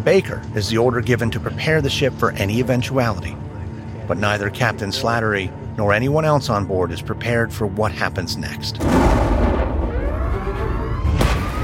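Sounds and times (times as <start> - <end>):
speech: 0.0 - 3.4, 4.1 - 9.3
enormous explosion inside a submarine's reinforced hull: 8.8 - 11.6.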